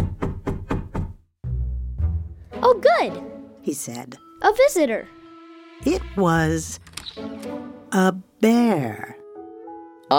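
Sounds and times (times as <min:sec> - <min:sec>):
quick crisp knocking on a door: 0:00.0 - 0:01.2
speech: 0:02.7 - 0:05.2, 0:05.8 - 0:09.1.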